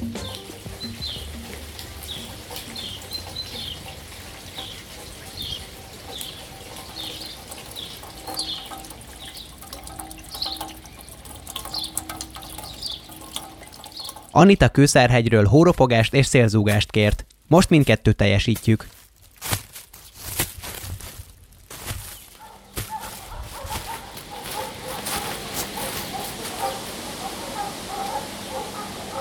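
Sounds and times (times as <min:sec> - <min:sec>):
birds chirping: 0:00.0 - 0:14.6, 0:22.1 - 0:29.2
steady rain splashing onto the ground: 0:00.0 - 0:15.2, 0:21.8 - 0:29.2
small drips: 0:00.0 - 0:18.0, 0:22.1 - 0:29.2
speech: 0:14.4 - 0:19.0.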